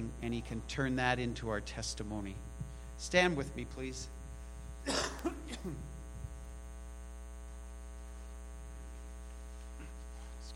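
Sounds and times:
quiet room hum: 0:00.0 - 0:10.5
speech: 0:00.2 - 0:04.2, 0:04.8 - 0:05.9
man clearing his throat close to the mic: 0:04.8 - 0:06.0, 0:09.8 - 0:10.1.

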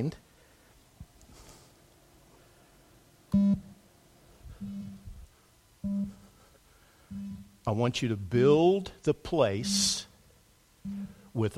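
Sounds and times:
speech: 0:00.0 - 0:00.2, 0:07.7 - 0:10.1, 0:10.8 - 0:11.5
low electronic tones in a guided visualization exercise: 0:04.5 - 0:06.4, 0:07.1 - 0:07.7, 0:09.6 - 0:10.1, 0:10.8 - 0:11.3.

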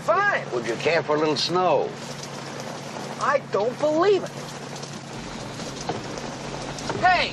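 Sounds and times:
rain falling indoors: 0:00.0 - 0:07.3
speech: 0:00.6 - 0:02.2, 0:03.2 - 0:04.5, 0:07.0 - 0:07.3.

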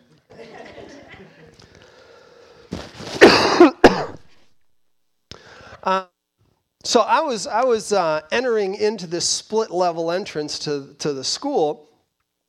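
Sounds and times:
laughter: 0:00.0 - 0:01.7
faint trailing breath: 0:01.6 - 0:02.8, 0:05.3 - 0:05.8
person coughing during a church service: 0:03.2 - 0:04.3
speech: 0:05.8 - 0:06.1, 0:06.9 - 0:11.9.

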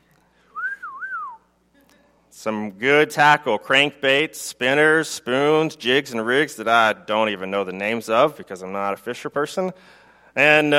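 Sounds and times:
faint hum: 0:00.0 - 0:10.7
attempted wavering whistle: 0:00.5 - 0:01.4
speech: 0:02.4 - 0:10.7.

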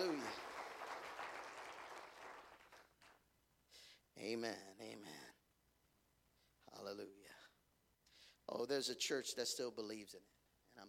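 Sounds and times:
congregation clapping hands: 0:00.0 - 0:03.2
speech: 0:04.2 - 0:05.4, 0:06.7 - 0:07.5, 0:08.5 - 0:10.8.

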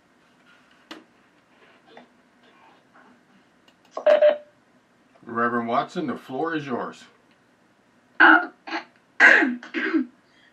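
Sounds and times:
speech: 0:04.0 - 0:04.4, 0:05.3 - 0:07.2
person clearing throat: 0:08.2 - 0:10.1
person coughing: 0:08.2 - 0:10.1.

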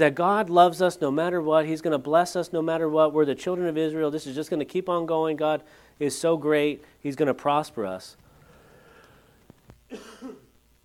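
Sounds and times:
speech: 0:00.0 - 0:08.2, 0:09.9 - 0:10.1
person coughing: 0:09.9 - 0:10.5
throat clearing: 0:09.9 - 0:10.5.

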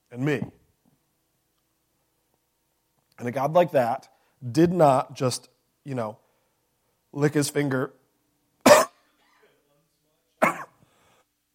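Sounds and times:
speech: 0:00.1 - 0:00.6, 0:03.2 - 0:06.2, 0:07.1 - 0:08.0
sharp harsh coughs: 0:08.7 - 0:09.0, 0:10.4 - 0:10.8.

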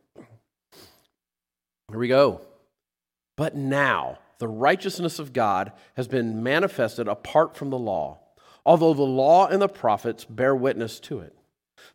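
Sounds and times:
speaker clearing throat at a microphone: 0:00.0 - 0:00.6
speech: 0:01.9 - 0:02.5, 0:03.4 - 0:11.9.

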